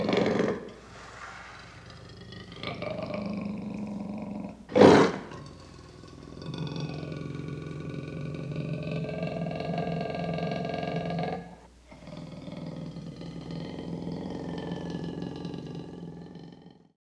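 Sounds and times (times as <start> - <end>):
leopard growling and roaring: 0.0 - 16.9.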